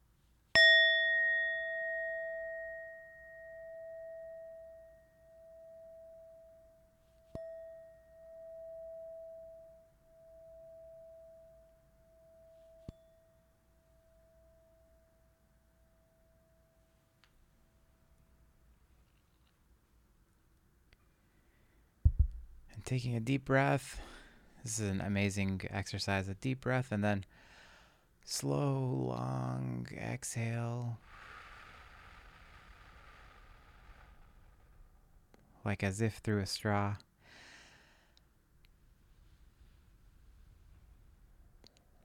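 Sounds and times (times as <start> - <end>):
meditation bell struck and ringing: 0.6 - 16.9
speech: 22.8 - 27.4, 28.2 - 31.1, 35.6 - 37.1.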